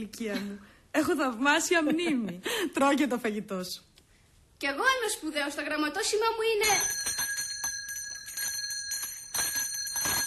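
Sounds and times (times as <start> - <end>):
speech: 0.0 - 3.9, 4.6 - 7.2
school bell ringing as the first bell: 6.6 - 10.2.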